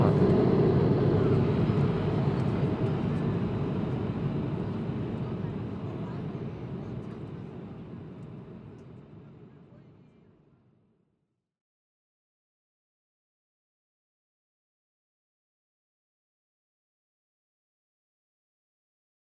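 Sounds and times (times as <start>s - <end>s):
airplane cabin engine and air drone in flight: 0.0s - 10.2s.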